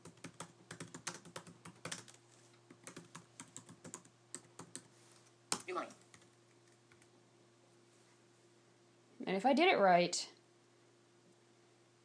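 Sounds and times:
typing a command on a computer keyboard: 0:00.0 - 0:04.9, 0:05.5 - 0:07.1
speech: 0:05.7 - 0:06.0, 0:09.2 - 0:10.3.

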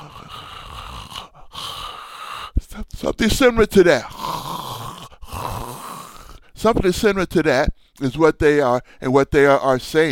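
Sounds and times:
voice imitating a dying person's death rattle: 0:00.0 - 0:02.9, 0:03.9 - 0:06.5
speech: 0:03.0 - 0:04.1, 0:06.6 - 0:10.1.

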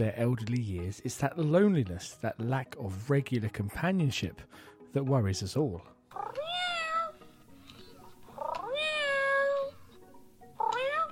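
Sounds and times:
speech: 0:00.0 - 0:06.4
robotic toy cat meowing: 0:06.1 - 0:09.8, 0:10.6 - 0:11.1.

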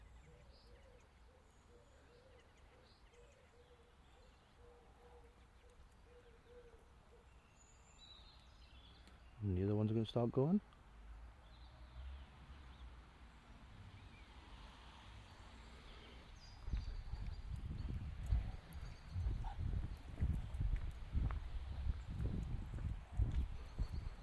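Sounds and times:
speech: 0:09.4 - 0:10.8
horse hooves clip-clopping at a walk: 0:16.5 - 0:24.2.

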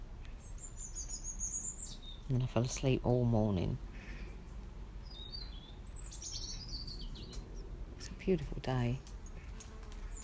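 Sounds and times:
bird singing outdoors: 0:00.4 - 0:07.7
speech: 0:02.3 - 0:03.9, 0:08.3 - 0:09.1.

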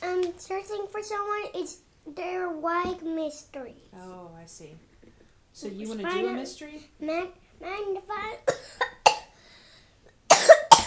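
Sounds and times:
speech: 0:00.3 - 0:04.9, 0:05.6 - 0:09.0
person coughing harshly: 0:08.5 - 0:09.4, 0:10.3 - 0:10.8.

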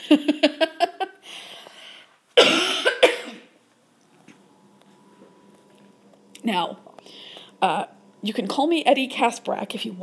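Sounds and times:
speech: 0:00.1 - 0:00.4, 0:06.5 - 0:06.9, 0:07.6 - 0:10.0
person coughing in a fit of hacking bursts: 0:02.4 - 0:03.6.

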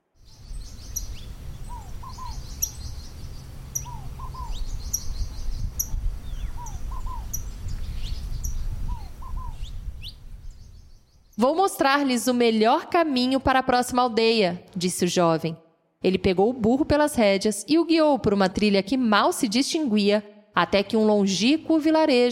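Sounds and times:
small birds in Nazareth chirping and twittering in the morning: 0:00.1 - 0:11.4
steady low outdoor rumble: 0:00.2 - 0:08.2
speech: 0:11.4 - 0:22.3.

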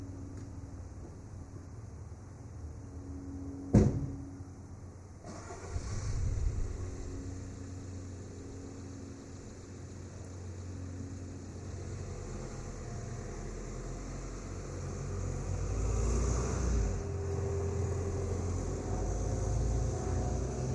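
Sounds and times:
airplane flying overhead: 0:00.0 - 0:20.7
car driving off: 0:05.2 - 0:08.3, 0:11.4 - 0:20.7.

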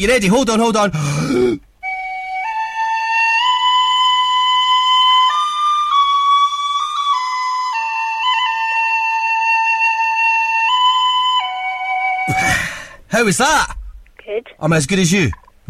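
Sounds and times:
speech: 0:00.0 - 0:01.7, 0:13.2 - 0:15.6
tin whistle playing a slow simple melody: 0:01.8 - 0:12.3.

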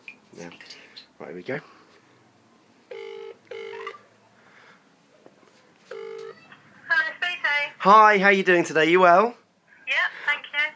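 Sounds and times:
faint noise: 0:00.0 - 0:10.7
speech: 0:00.4 - 0:01.8, 0:07.8 - 0:09.4
telephone ringing tone on the line as a call is placed to a company: 0:02.9 - 0:04.0, 0:05.9 - 0:06.4
telephone dialing: 0:05.9 - 0:06.4.

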